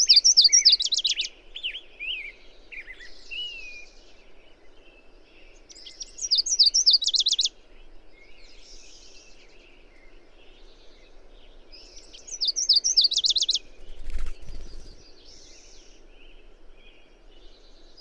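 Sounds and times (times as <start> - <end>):
bird song of high chirps ending in a fast trill: 0.0 - 3.6, 5.7 - 7.5, 11.8 - 15.6.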